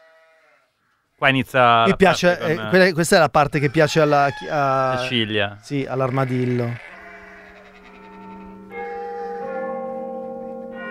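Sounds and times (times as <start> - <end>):
speech: 1.2 - 6.9
church bells ringing: 6.9 - 10.8.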